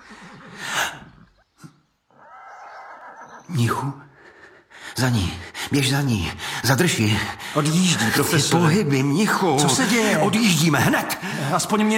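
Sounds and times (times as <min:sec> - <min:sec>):
horse snorting: 0:00.0 - 0:03.9
horse whinnying as girl struggles with it: 0:02.1 - 0:04.0
speech: 0:03.5 - 0:04.1, 0:05.0 - 0:11.9
laughter: 0:08.0 - 0:11.9.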